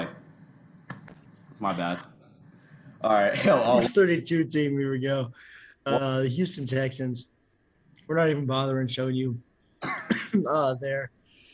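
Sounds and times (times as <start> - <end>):
speech: 1.6 - 2.2, 3.0 - 7.3, 8.1 - 11.2
throat clearing from a bit of oat stuck in the throat: 9.8 - 10.7.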